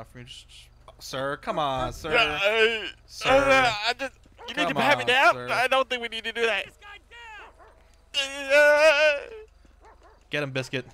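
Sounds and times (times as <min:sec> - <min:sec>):
speech: 0:00.0 - 0:06.9, 0:08.2 - 0:09.5, 0:10.3 - 0:10.9
dog barking: 0:04.4 - 0:04.8, 0:07.4 - 0:07.8, 0:09.8 - 0:10.3.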